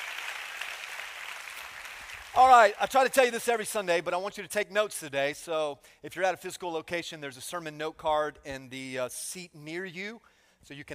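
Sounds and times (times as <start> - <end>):
audience clapping and applauding: 0.0 - 2.9
speech: 2.4 - 10.9.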